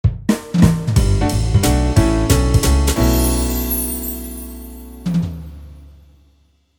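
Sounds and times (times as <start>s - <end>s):
jazz jingle: 1.0s - 6.4s.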